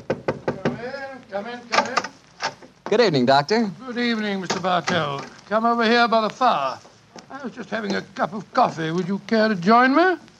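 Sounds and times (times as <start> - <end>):
knocks on a wooden study door: 0.0 - 0.9
speech: 1.3 - 2.2, 2.9 - 10.3.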